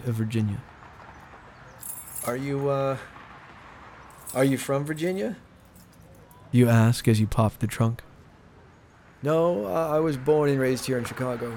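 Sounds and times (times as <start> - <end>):
speech: 0.0 - 0.7, 2.2 - 3.2, 4.3 - 5.5, 6.5 - 8.1, 9.2 - 11.5
set of keys jangling on a ring: 1.8 - 2.4, 5.6 - 6.5.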